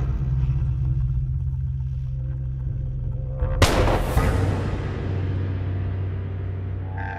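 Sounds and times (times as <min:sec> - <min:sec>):
steady low hum: 0:00.0 - 0:07.1
single pistol gunshot in a duel on a mountain plateau: 0:03.6 - 0:04.9.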